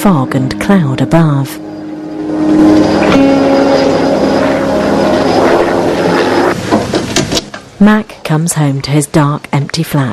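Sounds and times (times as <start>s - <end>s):
speech: 0.0s - 1.8s, 2.4s - 3.3s, 7.8s - 10.1s
helicopter engine drone with whirring rotor tones: 0.0s - 6.8s.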